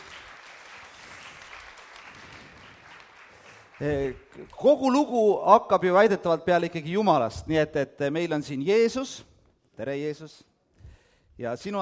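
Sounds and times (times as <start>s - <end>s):
audience applause for two volunteers: 0.0s - 4.4s
speech: 3.8s - 10.5s, 11.4s - 11.8s.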